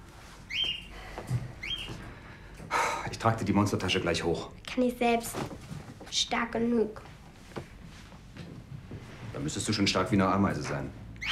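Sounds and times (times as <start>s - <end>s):
small pet bird chirping: 0.5s - 0.9s, 1.6s - 2.0s
speech: 3.2s - 7.1s, 9.4s - 11.0s.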